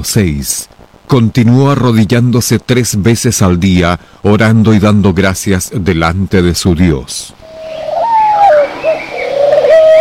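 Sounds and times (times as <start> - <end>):
speech: 0.0 - 8.0
pigeon cooing: 7.4 - 9.9.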